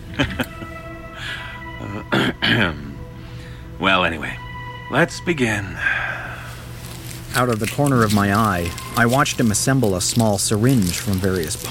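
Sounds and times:
speech: 0:00.2 - 0:00.5, 0:04.9 - 0:05.9, 0:07.4 - 0:11.7
man clearing his throat: 0:02.0 - 0:03.0.

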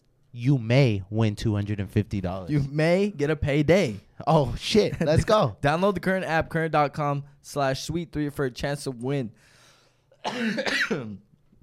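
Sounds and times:
speech: 0:00.4 - 0:09.5, 0:10.2 - 0:11.3
throat clearing: 0:10.2 - 0:11.2.

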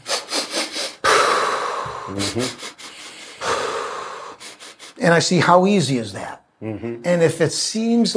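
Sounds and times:
forceful breathy exhale in a sniff-and-poo breathing exercise: 0:00.0 - 0:05.0
rhythmic nose sniffs in a sniff-and-poo breathing exercise: 0:00.0 - 0:05.0
speech: 0:02.1 - 0:02.7, 0:05.0 - 0:08.1.

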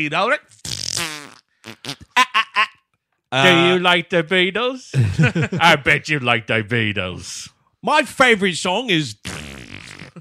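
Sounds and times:
speech: 0:00.0 - 0:02.7, 0:03.3 - 0:09.4
man farting: 0:00.5 - 0:02.2, 0:03.4 - 0:03.8, 0:09.2 - 0:10.1
laughter: 0:02.2 - 0:02.8, 0:03.4 - 0:03.8, 0:04.9 - 0:06.0.

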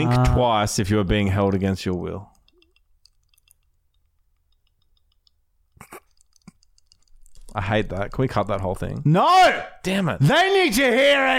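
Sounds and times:
speech: 0:00.0 - 0:02.3, 0:07.6 - 0:11.3
wet tongue clicking in the mouth: 0:02.3 - 0:07.5.

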